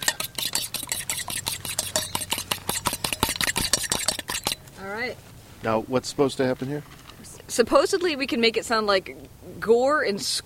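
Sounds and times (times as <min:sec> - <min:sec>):
eggs with bits of shell being mixed in a bowl: 0:00.0 - 0:04.7
speech: 0:05.0 - 0:10.4.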